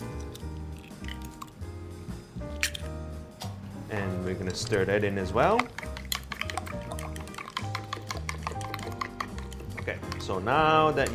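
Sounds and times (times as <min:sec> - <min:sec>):
egg cracked into batter of flour, baking powder and water: 0:00.0 - 0:01.6, 0:04.5 - 0:11.1
speech: 0:03.9 - 0:05.9, 0:10.2 - 0:11.1.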